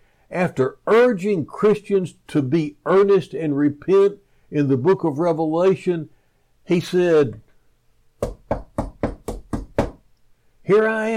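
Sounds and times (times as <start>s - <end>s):
speech: 0.3s - 7.4s, 10.7s - 11.1s
firm knocks on a wooden door: 8.2s - 10.0s.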